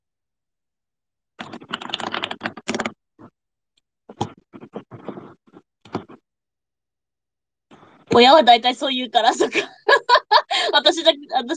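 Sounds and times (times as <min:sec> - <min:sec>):
typing on a computer keyboard: 0:01.4 - 0:03.0
speech: 0:08.2 - 0:10.1, 0:10.7 - 0:11.5
laughter: 0:09.3 - 0:10.8.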